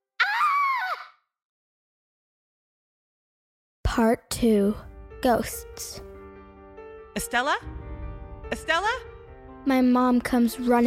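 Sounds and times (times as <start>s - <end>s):
person screaming in fright: 0.2s - 1.2s
speech: 4.0s - 6.1s, 7.2s - 7.8s, 8.5s - 10.8s.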